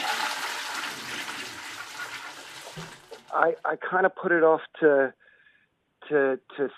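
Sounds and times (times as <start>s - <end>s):
toilet flushing: 0.0s - 3.5s
speech: 2.8s - 5.2s, 6.1s - 6.7s.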